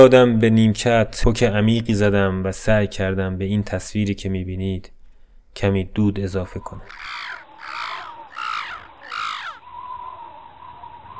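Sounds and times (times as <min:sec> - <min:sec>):
speech: 0:00.0 - 0:05.0, 0:05.6 - 0:07.2
crows cawing: 0:06.8 - 0:11.1.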